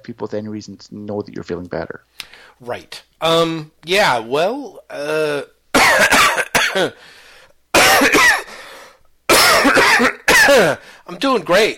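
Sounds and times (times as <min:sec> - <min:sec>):
speech: 0:00.0 - 0:07.2, 0:08.0 - 0:08.4, 0:10.0 - 0:11.7
person recovering from illness coughing harshly: 0:04.9 - 0:07.0, 0:07.8 - 0:08.6, 0:09.3 - 0:10.9.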